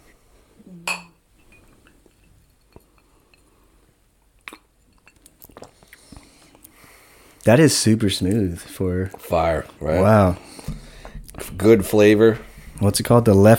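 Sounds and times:
glasses clinking in a toast in California: 0.8 - 3.5
speech: 7.4 - 10.8, 11.6 - 13.5.

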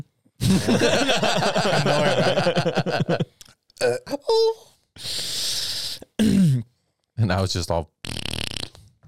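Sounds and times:
speech: 0.0 - 4.7, 7.3 - 8.0
laughter: 0.4 - 3.3
wet sputtering diarrhea fart: 8.0 - 8.8.

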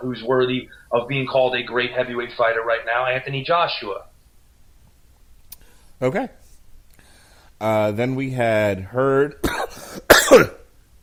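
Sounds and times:
speech: 0.0 - 4.1, 6.0 - 6.4, 7.6 - 9.6, 10.3 - 10.6
person coughing: 9.4 - 10.7.

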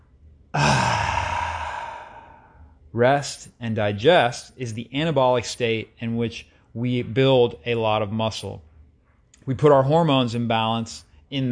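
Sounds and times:
person sighing out a deep breath after a workout: 0.6 - 2.6
speech: 2.9 - 8.7, 9.5 - 11.5.

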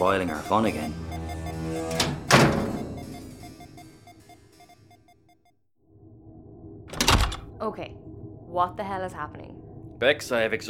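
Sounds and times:
speech: 0.0 - 1.1, 7.6 - 10.6
short electronic beeps: 0.0 - 5.6
airlock door slamming shut with a loud metallic thud: 2.0 - 2.8, 6.9 - 7.5.

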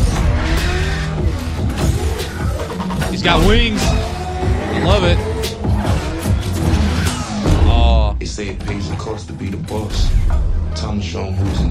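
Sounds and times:
Mercedes car engine roaring: 0.0 - 10.7
Mercedes car tires squealing: 0.1 - 7.7
speech: 3.2 - 4.1, 4.8 - 5.3, 8.3 - 11.6.

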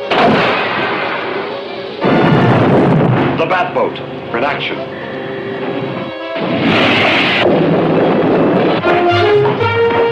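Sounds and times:
submarine weapon explosive blasts: 0.0 - 3.7, 6.2 - 10.1
speech: 3.5 - 5.0.

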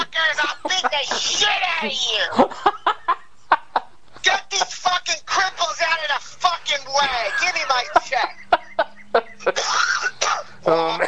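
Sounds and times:
laughter: 0.0 - 11.0
speech: 1.0 - 2.7
harsh hacking coughs: 9.5 - 11.0
throat clearing: 9.6 - 11.0.

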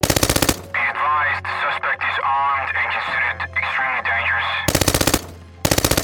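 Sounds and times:
automatic gunfire bursts from a shootout between police and bank robbers: 0.0 - 0.8, 4.7 - 6.0
wavering voices: 0.7 - 4.7.

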